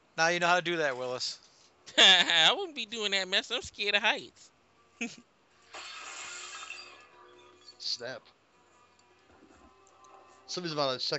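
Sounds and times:
speech: 0:00.2 - 0:05.3, 0:07.8 - 0:08.4, 0:10.5 - 0:11.1
glass breaking: 0:05.7 - 0:07.8.

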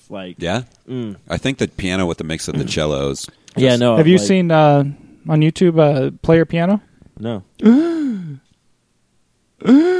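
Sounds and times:
speech: 0:00.1 - 0:07.9, 0:09.6 - 0:09.9
gasps of surprise: 0:07.6 - 0:08.4, 0:09.6 - 0:09.9.

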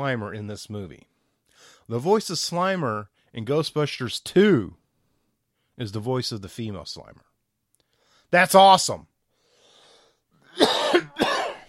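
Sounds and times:
speech: 0:00.0 - 0:04.8, 0:05.8 - 0:07.3, 0:08.3 - 0:09.1
harsh coughs: 0:10.5 - 0:11.6.

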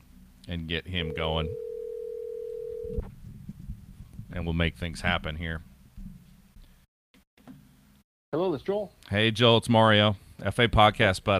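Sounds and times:
speech: 0:00.5 - 0:01.7, 0:02.9 - 0:03.2, 0:04.3 - 0:05.7, 0:08.3 - 0:11.3
telephone ringing tone: 0:01.0 - 0:03.0.

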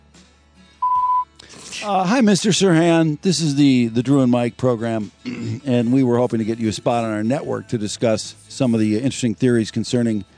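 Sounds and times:
single one kilohertz electronic beep from an answering machine: 0:00.8 - 0:01.3
speech: 0:01.8 - 0:10.3.

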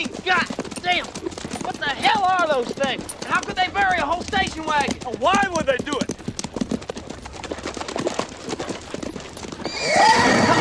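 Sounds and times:
horse hooves clip-clopping at a walking pace: 0:00.0 - 0:10.5
speech: 0:01.9 - 0:06.3
horse whinnying: 0:08.0 - 0:10.5.

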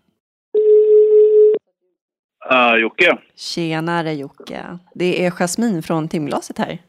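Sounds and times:
telephone ringback tone: 0:00.6 - 0:01.6
speech: 0:02.5 - 0:06.8.

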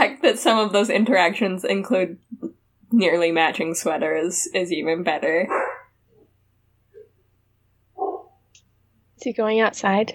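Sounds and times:
speech: 0:00.0 - 0:05.7, 0:09.2 - 0:10.1
dog barking and yelping: 0:05.5 - 0:06.0, 0:08.0 - 0:08.4.

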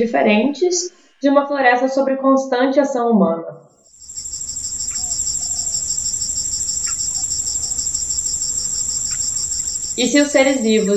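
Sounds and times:
speech: 0:00.0 - 0:03.7, 0:10.0 - 0:10.9
loud high cricket trill in a forest: 0:03.8 - 0:10.9
faint brief chirps in a forest: 0:03.9 - 0:10.9.

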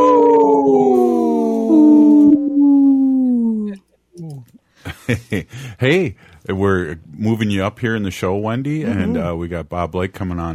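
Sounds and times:
wolf howling: 0:00.0 - 0:03.8
speech: 0:05.1 - 0:10.5.

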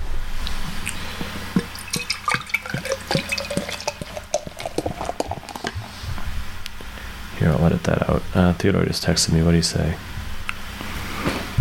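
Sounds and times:
steady low hum: 0:00.0 - 0:11.5
drips and small splashes of liquid: 0:00.8 - 0:05.8
liquid pouring: 0:00.8 - 0:06.0
speech: 0:07.4 - 0:10.1.

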